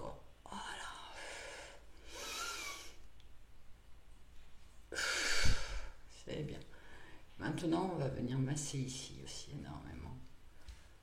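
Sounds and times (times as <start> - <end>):
airy hissing breaths during a shoulder-rolling exercise: 1.0 - 3.1, 4.9 - 6.1, 6.7 - 7.4
speech: 7.4 - 10.3.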